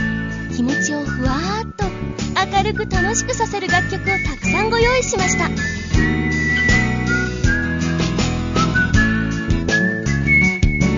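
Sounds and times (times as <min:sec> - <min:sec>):
live whistled melody: 0:00.0 - 0:01.9, 0:02.5 - 0:10.9
speech: 0:00.6 - 0:06.1
bright acoustic guitar strumming and plucking: 0:03.9 - 0:10.9.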